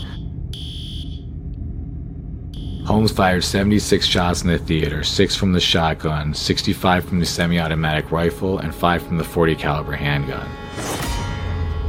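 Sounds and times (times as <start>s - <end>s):
fire alarm sounding in sharp high-pitched electronic beeps: 0.0s - 1.3s, 2.6s - 2.9s
speech: 2.9s - 11.1s.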